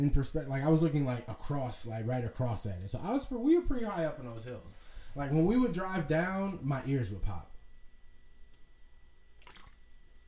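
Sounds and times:
speech: 0.0s - 7.5s
low hum: 0.0s - 10.2s
person gulping water: 9.3s - 10.2s.

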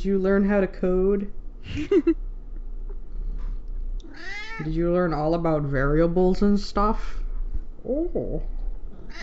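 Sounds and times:
speech: 0.0s - 2.3s, 4.2s - 7.2s, 7.8s - 9.2s
cat meowing: 4.0s - 4.7s, 9.0s - 9.2s.

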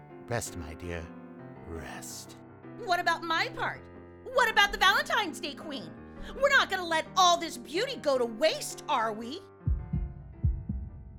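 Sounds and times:
speech: 0.3s - 9.5s
low heartbeat thumping: 9.7s - 11.1s.

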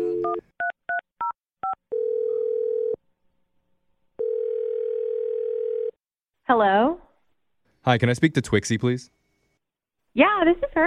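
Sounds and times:
long mid-pitched telephone ringing tones: 0.0s - 1.0s, 1.6s - 3.0s, 4.2s - 6.0s
speech: 6.5s - 7.0s, 7.8s - 9.2s, 10.1s - 10.8s.

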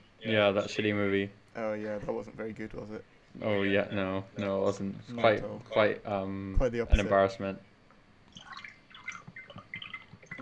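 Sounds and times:
speech: 0.2s - 7.7s
apple juice being poured into a glass: 8.3s - 10.3s.

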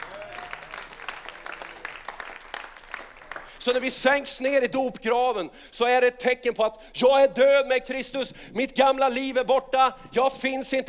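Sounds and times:
audience applauding: 0.0s - 3.9s
speech: 3.6s - 10.8s.

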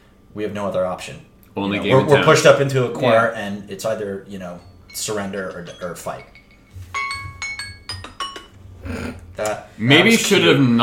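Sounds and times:
low hum: 0.0s - 10.8s
speech: 0.4s - 6.4s, 8.9s - 10.8s
new phone alarm ringing a bell-like electronic melody: 4.6s - 8.6s.

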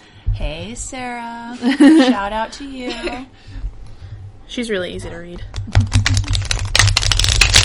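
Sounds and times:
low steady hum: 0.0s - 7.6s
speech: 0.4s - 3.6s, 4.5s - 6.2s
deck of cards being shuffled: 5.5s - 7.6s.

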